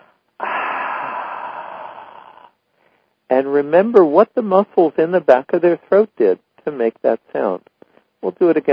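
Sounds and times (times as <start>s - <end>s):
person breathing in through the nose and out through the mouth: 0.0s - 3.2s
speech: 3.3s - 8.7s.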